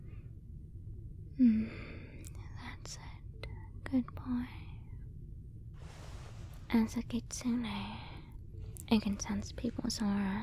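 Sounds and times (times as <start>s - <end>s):
speech: 1.4s - 1.8s, 2.8s - 3.2s, 3.9s - 4.6s, 6.7s - 8.1s, 8.9s - 10.4s
slow deep breath in during an examination: 5.8s - 6.7s.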